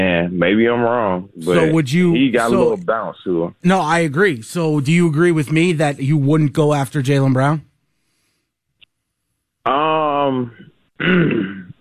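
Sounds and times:
speech: 0.2s - 7.7s, 9.6s - 11.6s
throat clearing: 10.3s - 11.7s.

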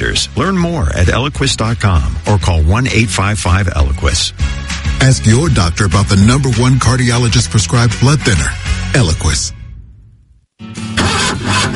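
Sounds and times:
speech: 0.2s - 9.6s
car engine with a weak battery cranking and starting: 10.9s - 11.7s.

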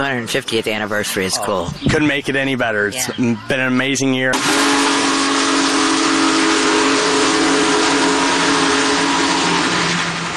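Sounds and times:
speech: 0.1s - 5.0s
steam locomotive whistle: 4.3s - 10.3s.

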